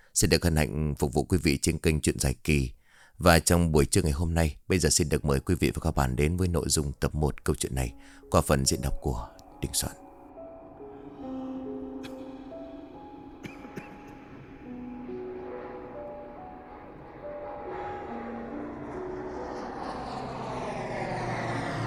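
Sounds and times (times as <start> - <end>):
speech: 0.2 - 10.0
airplane landing at an airport: 8.7 - 21.8.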